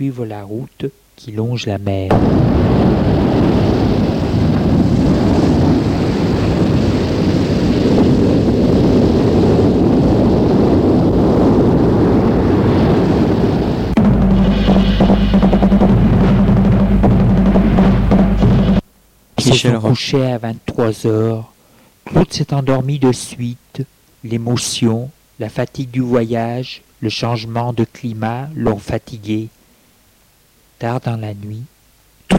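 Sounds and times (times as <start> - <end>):
speech: 0.0 - 3.6, 19.6 - 21.5, 22.1 - 29.6, 30.8 - 31.7
strong wind roaring along the seashore: 2.2 - 18.8
low droning hum: 14.0 - 18.9.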